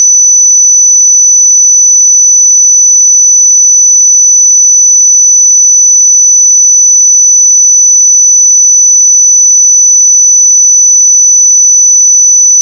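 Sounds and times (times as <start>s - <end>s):
5986 Hz pure sine tone: 0.0s - 12.6s.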